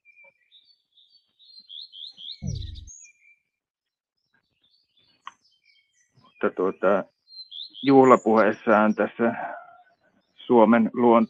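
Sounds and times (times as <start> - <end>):
birdsong twittering in high chirping phrases: 0.0 - 11.2
low thump: 2.4 - 3.0
speech: 6.4 - 7.2, 7.8 - 9.6, 10.5 - 11.2.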